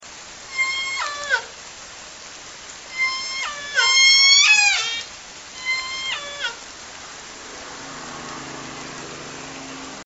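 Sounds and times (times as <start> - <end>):
orca call in S1 sequence: 0.5 - 1.5, 2.9 - 6.6.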